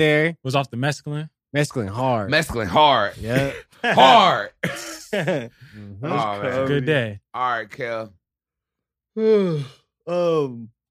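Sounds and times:
speech: 0.0s - 8.2s, 9.2s - 10.8s
person yawning loudly with a groaning voice: 9.2s - 10.7s.

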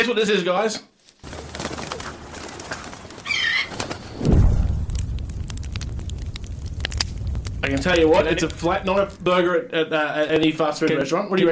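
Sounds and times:
speech: 0.0s - 0.9s, 7.6s - 11.5s
scattered crackles and clicks: 1.0s - 11.1s
bird giving short warbling call: 3.2s - 4.1s
low whooshing burst: 4.0s - 9.5s.

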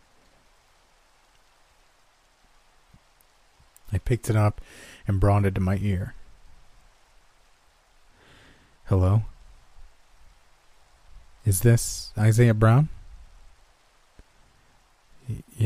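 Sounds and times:
steady rain: 0.0s - 15.6s
speech: 3.9s - 6.2s, 8.9s - 9.3s, 11.4s - 13.0s, 15.3s - 15.6s.

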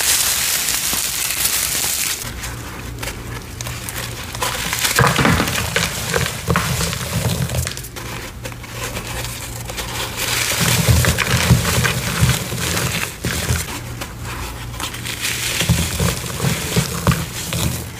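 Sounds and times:
gym chalk blocks crumbling and crunching: 0.0s - 17.9s.

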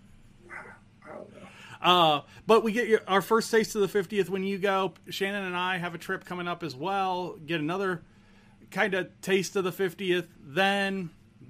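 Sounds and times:
low hum: 0.0s - 11.4s
female dog barking: 0.5s - 1.3s
speech: 1.8s - 8.1s, 8.7s - 11.4s.

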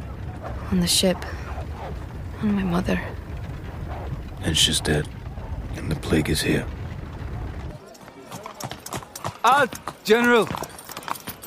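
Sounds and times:
low rumbling: 0.0s - 7.9s
horse hooves clip-clopping on a hard surface: 0.0s - 11.4s
speech: 0.5s - 1.4s, 2.4s - 3.2s, 4.4s - 5.2s, 5.8s - 6.8s, 9.4s - 10.7s.

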